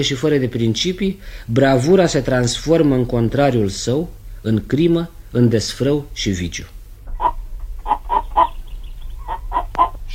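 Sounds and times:
speech: 0.0s - 6.8s
low steady hum: 0.0s - 10.1s
capon clucking: 7.1s - 10.1s.

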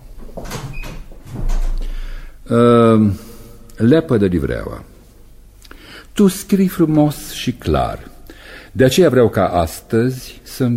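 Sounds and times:
door creaking squeal: 0.5s - 1.9s
speech: 2.5s - 3.2s, 3.8s - 4.9s, 6.2s - 8.1s, 8.7s - 10.7s.

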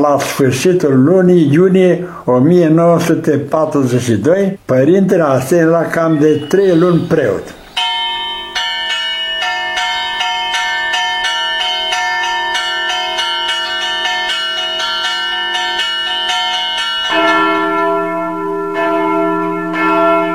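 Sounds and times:
speech: 0.0s - 7.6s
monastery church bells ringing: 5.8s - 20.3s.

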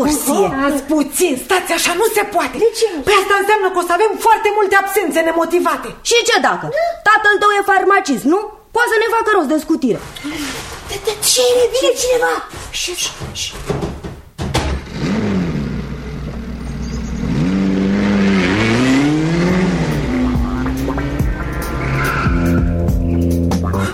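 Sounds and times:
speech: 0.1s - 13.8s
thump: 13.2s - 14.9s
car engine accelerating hard with a wavering whine: 14.8s - 23.9s
car tires squealing: 14.8s - 23.9s.

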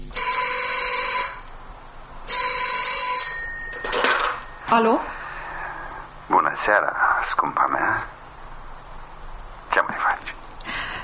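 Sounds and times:
old-style telephone bell ringing: 0.1s - 1.6s, 2.3s - 4.8s
speech: 4.7s - 5.2s, 6.3s - 8.2s.

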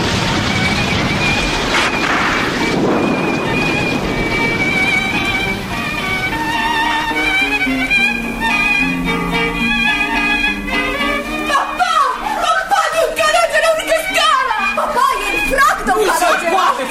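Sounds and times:
low rumble of thunder: 0.0s - 8.5s
steady hissing rain pouring down: 0.0s - 16.8s
sustained orchestral music playing loudly: 0.0s - 16.8s
laughter: 11.5s - 16.8s.

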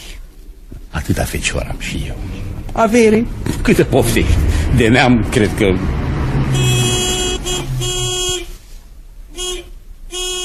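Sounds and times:
car engine rumbling pulling up at a gate: 0.0s - 10.2s
speech: 1.1s - 6.0s
car horn honking: 6.2s - 8.7s, 9.3s - 10.4s.

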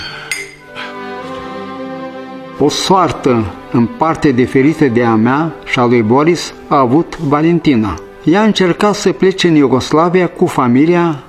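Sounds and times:
drinking glasses clinking in a family toast: 0.0s - 0.8s
speech: 2.6s - 11.2s.

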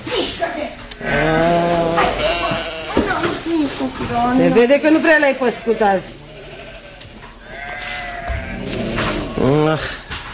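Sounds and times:
rustling farmyard noise: 0.0s - 10.3s
sheep bleating loudly: 1.0s - 3.3s, 5.0s - 9.7s
speech: 4.1s - 6.2s, 9.4s - 10.0s.

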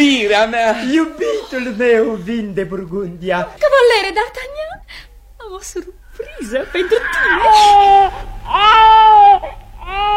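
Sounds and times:
speech: 0.0s - 4.8s, 5.5s - 10.1s
baby crying: 6.6s - 10.1s.

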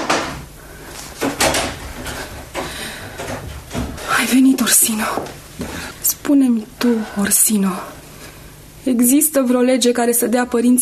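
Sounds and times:
door being opened: 1.2s - 4.2s
speech: 4.3s - 8.0s, 8.8s - 10.8s.

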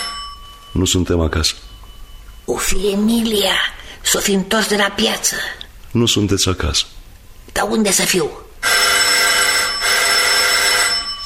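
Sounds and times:
electric doorbell ringing at a front door: 0.0s - 1.0s, 8.6s - 11.2s
speech: 0.7s - 1.8s, 2.5s - 6.9s, 7.6s - 8.5s.

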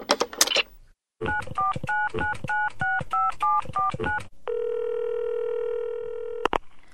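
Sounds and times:
touch-tone beeps of a telephone number being dialed: 1.2s - 5.4s
steady buzzing telephone ringing tone: 3.8s - 6.5s.

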